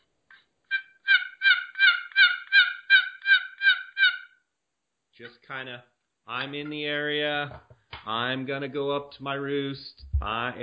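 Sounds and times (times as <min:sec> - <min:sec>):
relaxed hen turkey yelps worked on a wooden box call: 0:00.7 - 0:04.4
speech: 0:05.2 - 0:10.6.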